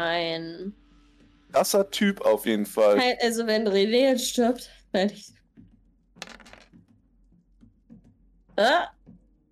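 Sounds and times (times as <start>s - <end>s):
speech: 0.0s - 0.8s, 1.5s - 5.4s, 8.6s - 9.0s
eleven dice rolled during a tabletop role-playing game: 6.2s - 6.8s.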